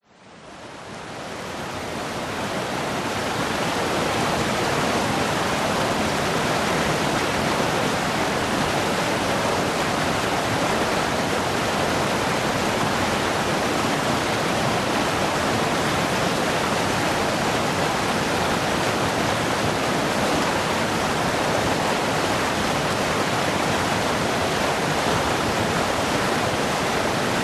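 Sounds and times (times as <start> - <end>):
river flowing over rocks in Vietnam: 0.2 - 27.4.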